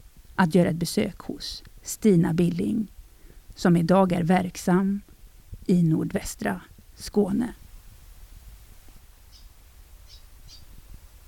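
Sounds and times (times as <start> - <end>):
outdoor hiss: 0.0 - 11.2
speech: 0.4 - 3.0, 3.6 - 5.1, 5.7 - 7.6
high bird chirps outdoors: 9.3 - 10.7.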